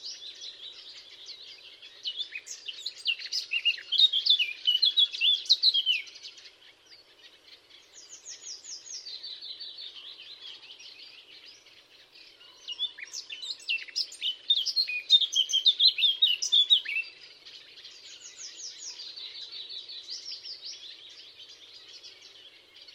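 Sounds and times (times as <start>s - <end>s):
Eurasian blackcap Sylvia atricapilla song: 0.0s - 22.9s.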